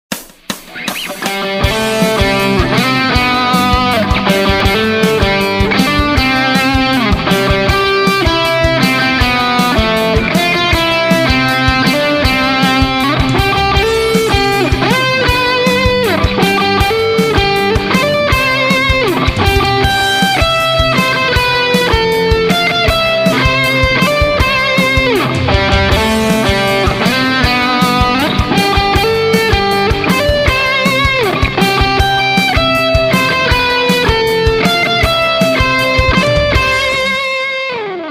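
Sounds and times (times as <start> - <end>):
rock music: 0.1 - 38.1.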